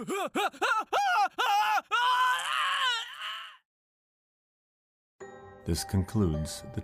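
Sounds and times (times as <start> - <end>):
speech: 0.0 - 2.0, 5.6 - 6.8
man groaning: 0.0 - 2.3
man screaming as he is dragged away: 0.0 - 3.6.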